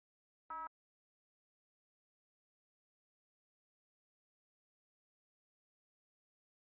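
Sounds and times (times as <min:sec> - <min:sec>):
electronic flash beep tone: 0:00.5 - 0:00.7.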